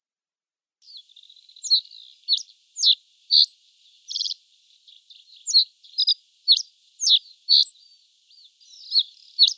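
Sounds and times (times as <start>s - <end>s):
pine bunting singing: 0.8s - 9.5s.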